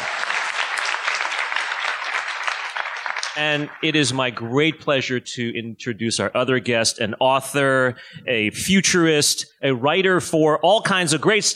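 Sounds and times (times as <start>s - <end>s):
crowd clapping: 0.0s - 4.4s
speech: 3.4s - 11.5s.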